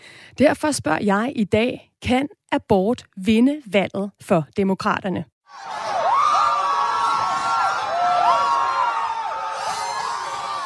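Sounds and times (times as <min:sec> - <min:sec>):
speech: 0:00.4 - 0:05.8
high rising whoops and shouts of protesters: 0:05.5 - 0:10.6
large crowd of protesters cheering: 0:05.5 - 0:10.6.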